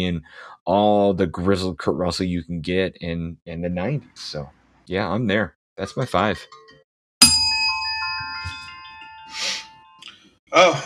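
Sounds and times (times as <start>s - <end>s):
speech: 0.0s - 6.6s, 10.5s - 10.8s
soft breathy noise: 0.2s - 0.6s
bell ding: 7.2s - 10.0s.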